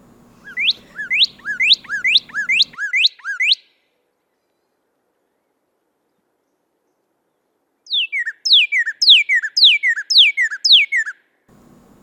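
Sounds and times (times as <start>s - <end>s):
northern cardinal whistled song: 0.4s - 3.8s, 7.9s - 11.2s.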